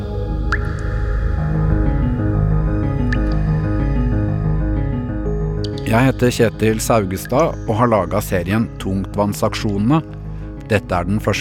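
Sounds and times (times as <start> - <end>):
deep droning hum: 0.0 - 8.3
liquid dripping: 0.4 - 1.3, 3.0 - 4.0, 5.6 - 10.7
speech: 5.9 - 11.3.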